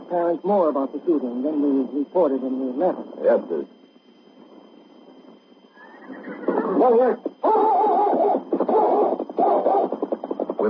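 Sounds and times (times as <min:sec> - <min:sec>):
speech: 0:00.1 - 0:03.8, 0:06.8 - 0:09.7
big black horse neighing: 0:05.8 - 0:06.9.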